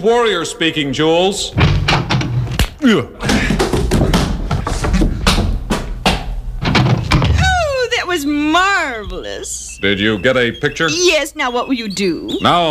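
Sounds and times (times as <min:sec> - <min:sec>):
speech: 0:00.0 - 0:02.1, 0:02.8 - 0:03.6, 0:08.9 - 0:12.6
shoulder thudding against the door of a shack on the outskirts of Midland City: 0:01.5 - 0:02.6, 0:03.2 - 0:07.9
excited voices: 0:07.4 - 0:12.6.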